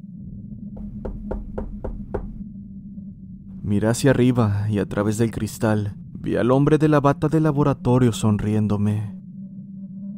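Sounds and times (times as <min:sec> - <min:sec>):
soft knocking on an office door: 0:00.8 - 0:02.4
speech: 0:03.7 - 0:09.1.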